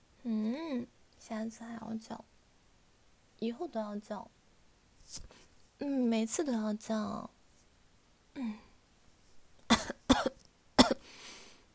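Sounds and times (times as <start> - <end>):
speech: 0.2 - 2.4, 3.4 - 4.4, 5.1 - 7.4, 8.4 - 8.6
person coughing: 9.7 - 11.1.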